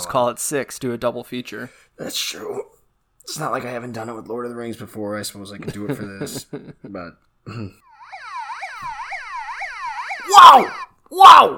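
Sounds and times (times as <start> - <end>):
speech: 0.0 - 7.8, 10.4 - 11.5
laughter: 5.6 - 7.0
police car siren yelping: 7.9 - 11.0.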